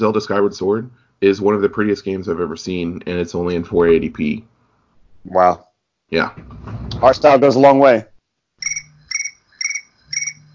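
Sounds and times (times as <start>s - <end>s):
speech: 0.0s - 4.5s, 5.2s - 8.1s
phone notification chirp with bright trilling tone: 8.6s - 10.5s.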